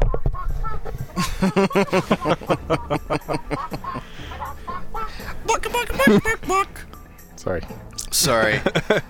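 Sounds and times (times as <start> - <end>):
laughter: 1.1 - 6.8, 8.2 - 9.0
speech: 1.2 - 3.4, 5.8 - 9.0
person imitating chicken clucking: 3.8 - 6.8.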